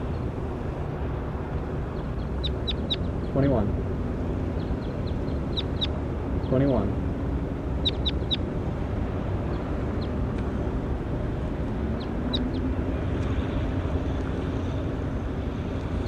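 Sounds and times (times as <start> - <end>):
steady low rumble: 0.0 - 16.0
bird calls recorded in the field: 2.0 - 3.4, 4.6 - 6.6, 7.8 - 8.4
speech: 3.4 - 3.8, 6.5 - 7.0.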